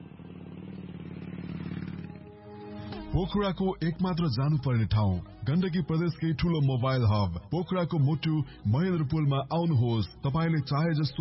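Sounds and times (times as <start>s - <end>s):
motorcycle riding off: 0.0s - 3.1s
speech: 3.2s - 11.1s.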